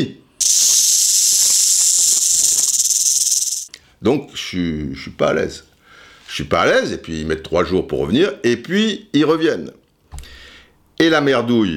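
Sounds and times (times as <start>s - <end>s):
speech: 0.0s - 0.7s, 4.0s - 5.7s, 6.4s - 9.8s, 11.0s - 11.7s
rattlesnake rattling: 0.4s - 3.7s.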